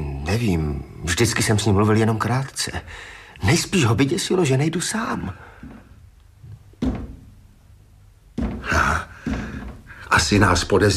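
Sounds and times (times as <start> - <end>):
speech: 0.3 - 5.5, 10.2 - 10.9
heavy knocking on a door: 6.8 - 7.4, 8.3 - 10.0.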